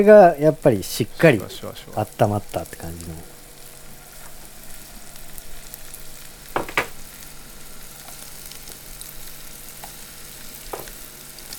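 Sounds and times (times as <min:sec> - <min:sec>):
speech: 0:00.0 - 0:03.3
hot oil sizzling in a frying pan: 0:00.0 - 0:11.5.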